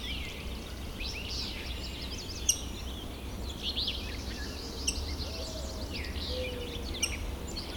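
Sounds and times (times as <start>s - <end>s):
chorus of songbirds chirping and whistling: 0.0s - 7.7s
outdoor hum: 0.0s - 7.7s
mourning doves cooing: 5.1s - 7.0s.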